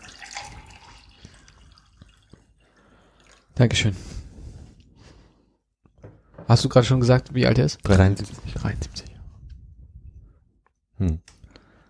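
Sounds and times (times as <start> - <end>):
water pouring into a glass: 0.0 - 3.5
speech: 3.6 - 4.2, 6.6 - 9.1.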